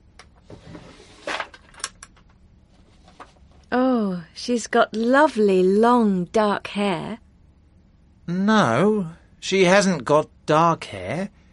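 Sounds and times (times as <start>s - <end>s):
wooden drawer holding family photos scraping open: 0.4s - 1.7s
speech: 4.0s - 7.2s, 8.3s - 11.4s.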